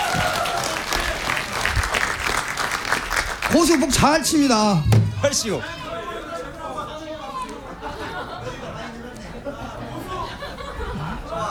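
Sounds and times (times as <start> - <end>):
crowd applauding: 0.0 - 6.0
laughter: 3.5 - 11.4
speech: 3.6 - 5.8.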